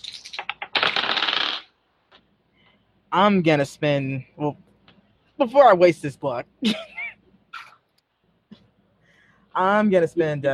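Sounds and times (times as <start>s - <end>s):
dice rolling during a tabletop role-playing game: 0.0s - 1.7s
speech: 3.1s - 4.7s, 5.4s - 7.0s, 9.6s - 10.5s.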